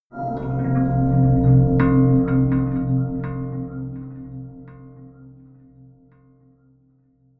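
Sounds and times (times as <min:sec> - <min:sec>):
melodic odd low bell pad: 0:00.1 - 0:05.6.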